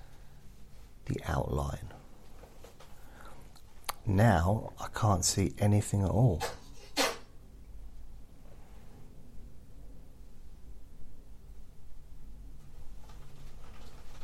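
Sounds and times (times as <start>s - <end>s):
speech: 1.2s - 1.9s, 4.0s - 6.6s
person sneezing: 6.4s - 7.3s.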